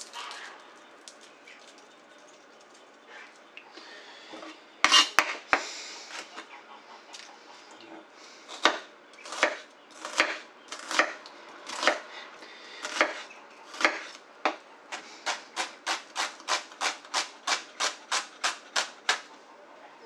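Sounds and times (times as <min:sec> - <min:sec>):
knife chopping an onion: 0:04.8 - 0:06.5, 0:08.5 - 0:12.1, 0:12.8 - 0:19.3.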